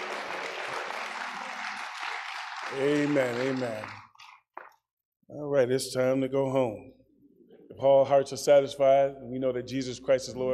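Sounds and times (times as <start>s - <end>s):
crowd applause: 0.0s - 4.4s
speech: 2.7s - 4.0s, 5.3s - 7.0s, 7.8s - 10.5s.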